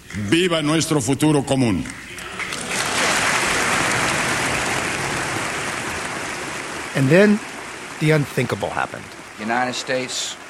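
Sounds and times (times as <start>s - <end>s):
speech: 0.2s - 2.2s, 7.0s - 10.4s
US Congress members applauding: 2.5s - 9.3s.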